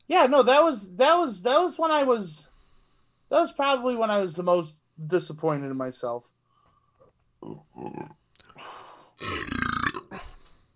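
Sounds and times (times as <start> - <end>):
speech: 0.1 - 2.5, 3.3 - 6.4, 7.4 - 9.7
loud drawn-out throaty burp: 7.4 - 8.2, 9.2 - 10.4.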